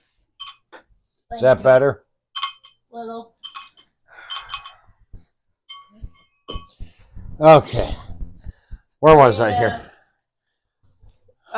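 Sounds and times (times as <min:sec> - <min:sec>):
glass clinking used as a bell: 0:00.4 - 0:00.8, 0:02.4 - 0:02.8, 0:03.4 - 0:04.9, 0:05.7 - 0:06.8
speech: 0:01.3 - 0:02.0, 0:02.9 - 0:03.3, 0:07.4 - 0:08.0, 0:09.0 - 0:09.9.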